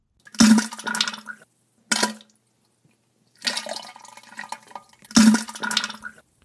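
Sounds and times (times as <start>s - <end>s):
diarrhea splattering into a toilet: 0.2s - 2.3s, 3.4s - 6.2s.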